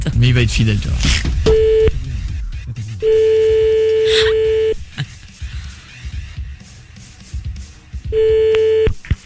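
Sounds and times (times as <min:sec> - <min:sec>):
speech: 0:00.1 - 0:01.5, 0:03.0 - 0:03.3
ringback tone of an outgoing phone call: 0:01.5 - 0:01.9, 0:03.1 - 0:04.8, 0:08.1 - 0:08.9.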